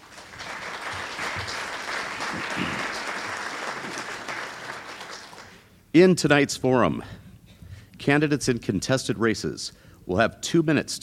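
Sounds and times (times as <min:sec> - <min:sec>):
audience applause at a candidates' forum: 0:00.0 - 0:05.7
speech: 0:02.3 - 0:03.0, 0:06.0 - 0:07.2, 0:08.0 - 0:11.0.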